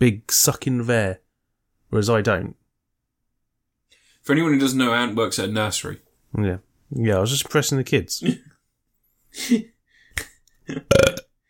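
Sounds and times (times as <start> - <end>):
speech: 0.0 - 1.2, 1.9 - 2.6, 4.2 - 8.6, 9.3 - 11.2
burps made on cue: 10.6 - 11.4.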